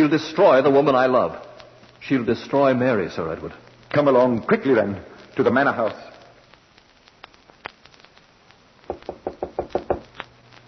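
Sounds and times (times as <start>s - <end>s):
speech: 0.0s - 6.1s
knocking on a wooden door: 8.9s - 10.0s.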